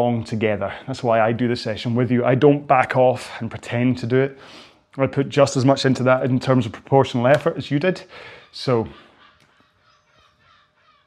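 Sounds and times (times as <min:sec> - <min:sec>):
speech: 0:00.0 - 0:09.0
seagull calling outdoors: 0:08.1 - 0:11.0.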